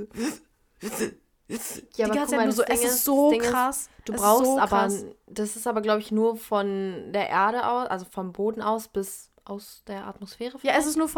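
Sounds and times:
voice imitating strained breathing under g-force: 0:00.0 - 0:02.0
speech: 0:00.0 - 0:11.1.

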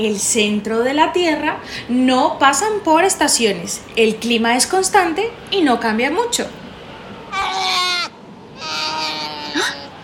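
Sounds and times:
speech: 0:00.0 - 0:06.6
polar bear cub crying: 0:07.3 - 0:10.0.

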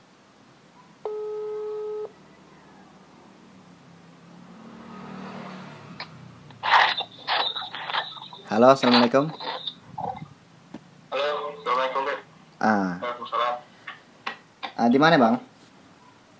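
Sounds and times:
hiss: 0:00.0 - 0:16.3
WhatsApp call ringback tone beep: 0:01.1 - 0:02.1
speech: 0:08.5 - 0:09.4, 0:14.9 - 0:15.5.

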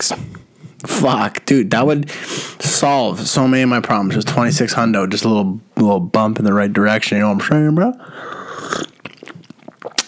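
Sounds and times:
speech: 0:00.0 - 0:00.3, 0:00.9 - 0:08.8
mouth clicks: 0:07.9 - 0:10.0
swallowing: 0:07.9 - 0:10.0
person slurping a hot drink: 0:08.0 - 0:10.0.

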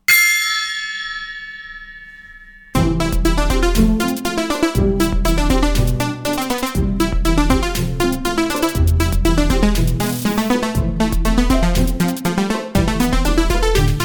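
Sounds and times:
single loud gong strike: 0:00.1 - 0:04.0
upbeat music: 0:02.8 - 0:14.0.

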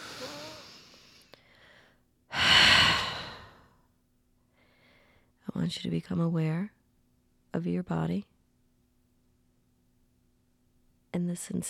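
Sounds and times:
slow deep breath during a guided relaxation exercise: 0:00.0 - 0:03.8, 0:04.5 - 0:05.4
speech: 0:05.7 - 0:06.8, 0:07.6 - 0:08.3, 0:11.2 - 0:11.6.

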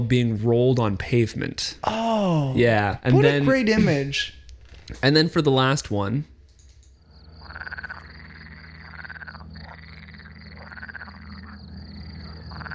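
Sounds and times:
speech: 0:00.0 - 0:06.3
steady low hum: 0:05.4 - 0:12.7
frogs croaking on an airfield: 0:06.9 - 0:12.7.

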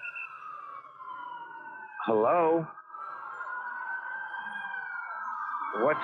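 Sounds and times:
emergency siren wailing heard over a phone: 0:00.0 - 0:06.0
speech: 0:02.0 - 0:02.8, 0:05.7 - 0:06.0.

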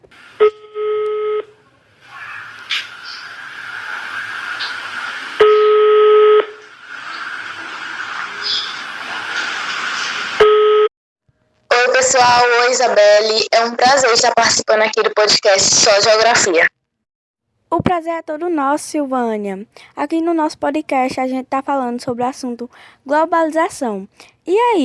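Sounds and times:
hissy noisy telephone line sound: 0:00.1 - 0:00.7, 0:01.9 - 0:10.4, 0:11.7 - 0:16.7
telephone ringing tones of a call being placed: 0:00.4 - 0:01.6, 0:05.4 - 0:06.6, 0:10.4 - 0:10.9
speech: 0:12.2 - 0:16.7, 0:17.8 - 0:24.8.

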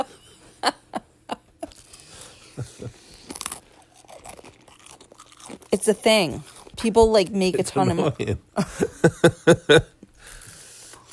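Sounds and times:
open-mouth crunchy chewing: 0:01.7 - 0:06.8
speech: 0:05.8 - 0:10.0
laughter: 0:08.2 - 0:10.0.

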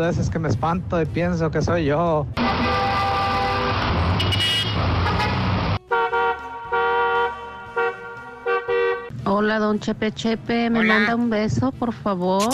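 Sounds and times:
speech: 0:00.0 - 0:02.8, 0:09.5 - 0:12.5
loud street noise: 0:00.0 - 0:12.5
car horns honking in busy traffic: 0:02.4 - 0:09.1.

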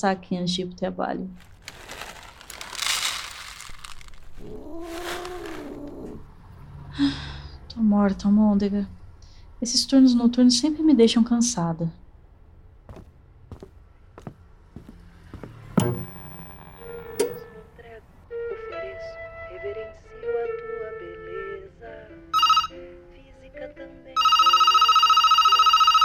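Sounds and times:
speech: 0:00.0 - 0:01.5, 0:07.0 - 0:09.0, 0:09.6 - 0:12.0
telephone ringing with buzzing electronic tone: 0:15.8 - 0:17.5, 0:22.4 - 0:22.8, 0:24.2 - 0:26.0.

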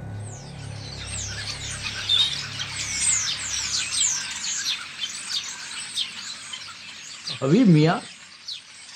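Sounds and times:
faint low rumble: 0:00.0 - 0:04.5
many birds chirping and twittering: 0:00.0 - 0:08.9
speech: 0:07.4 - 0:08.1.

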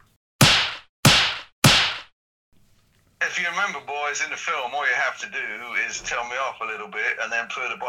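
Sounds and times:
sharp slaps across the face: 0:00.4 - 0:02.2
speech: 0:03.4 - 0:07.8.

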